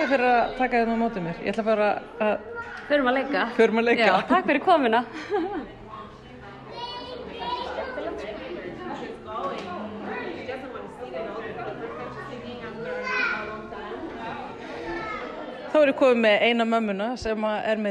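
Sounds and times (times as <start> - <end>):
speech: 0.0 - 5.8, 15.8 - 17.8
young children chattering at an open playgroup: 0.0 - 16.4
busy hum of playgroup activity: 0.0 - 17.8
young children shouting and squealing at an open playgroup: 2.2 - 3.0, 6.7 - 8.3, 12.0 - 13.8, 14.6 - 15.6
laughter: 3.8 - 6.1.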